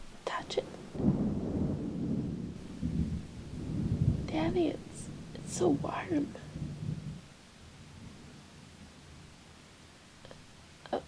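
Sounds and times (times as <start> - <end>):
deep rumble of thunder: 0.0 - 9.8
speech: 4.4 - 4.9, 5.5 - 6.5.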